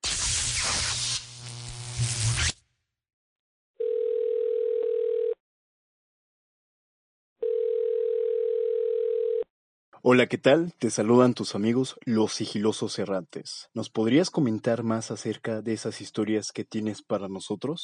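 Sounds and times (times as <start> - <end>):
short burst of loud broadband noise: 0.0 - 2.6
long steady mid-pitched telephone call tones as a call is placed: 3.8 - 5.4, 7.4 - 9.5
speech: 10.0 - 17.8.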